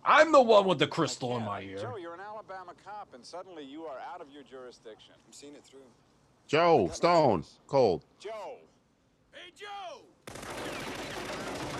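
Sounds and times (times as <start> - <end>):
speech: 0.1 - 8.7, 9.3 - 11.7
man shouting in a film scene: 9.4 - 10.2
rapid gunshots fired wildly in a film scene: 10.3 - 11.7.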